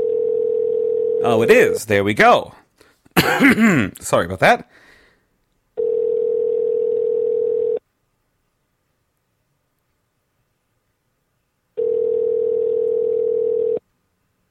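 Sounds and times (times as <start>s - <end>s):
ringback tone of an outgoing telephone wake-up call: 0.0s - 1.3s, 5.8s - 7.8s, 11.8s - 13.8s
speech: 1.2s - 2.6s, 3.2s - 4.8s.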